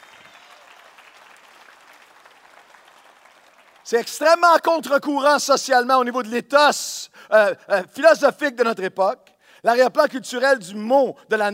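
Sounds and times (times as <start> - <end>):
audience applauding: 0.0 - 4.1
speech: 3.9 - 11.5.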